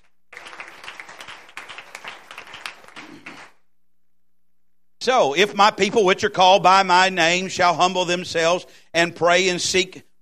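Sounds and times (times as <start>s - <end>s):
crowd applauding in praise: 0.0s - 3.7s
speech: 5.0s - 10.1s.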